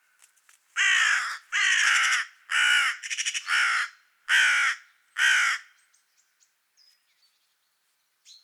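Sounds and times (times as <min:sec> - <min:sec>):
carrion crow Corvus corone giving harsh hoarse caws: 0:00.8 - 0:05.8.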